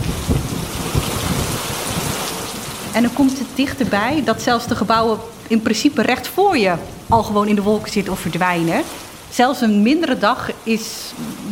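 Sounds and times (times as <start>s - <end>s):
low rumbling thumps: 0.0s - 8.9s
steady rain shower: 0.0s - 11.5s
speech: 3.0s - 11.5s.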